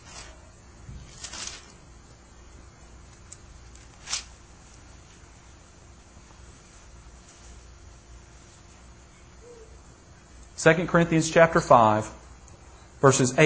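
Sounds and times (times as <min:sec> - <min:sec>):
Bible pages being turned: 0:00.0 - 0:01.8, 0:03.6 - 0:04.4
speech: 0:10.6 - 0:12.2, 0:13.0 - 0:13.4.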